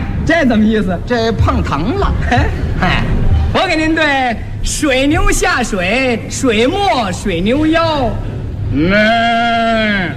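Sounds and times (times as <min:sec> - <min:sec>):
speech: 0:00.3 - 0:10.1
man's voice imitating a goat bleating: 0:08.7 - 0:10.1.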